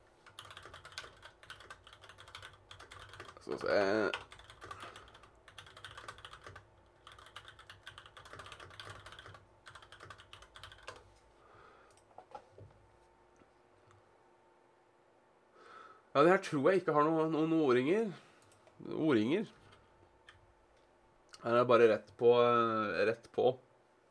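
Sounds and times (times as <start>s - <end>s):
typing on a new computer keyboard: 0.2s - 11.0s
speech: 3.5s - 4.3s, 16.2s - 18.2s, 18.9s - 19.6s, 21.4s - 23.6s
faint breathing: 11.3s - 12.1s, 15.5s - 16.1s.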